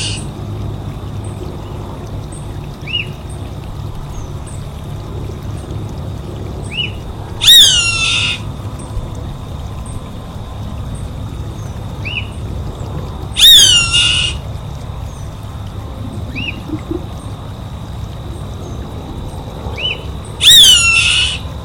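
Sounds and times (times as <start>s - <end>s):
steady low hum: 0.0s - 20.4s
savanna hawk screaming: 7.4s - 8.4s, 13.4s - 14.4s, 20.4s - 21.5s.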